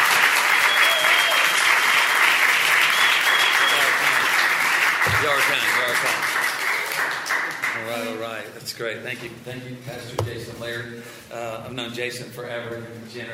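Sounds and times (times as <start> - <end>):
large audience applauding: 0.0 - 8.2
speech: 8.4 - 13.3.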